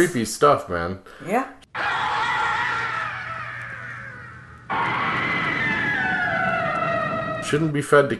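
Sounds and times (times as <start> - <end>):
speech: 0.0 - 2.0, 7.5 - 8.1
several voices screaming in high-pitched wails from a Halloween sound-effects album: 1.8 - 7.7.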